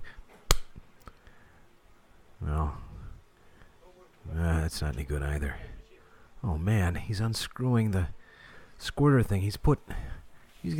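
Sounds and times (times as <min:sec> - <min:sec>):
person slapping own face with hand: 0:00.4 - 0:00.9
speech: 0:04.7 - 0:05.7, 0:06.4 - 0:08.2, 0:08.8 - 0:10.7.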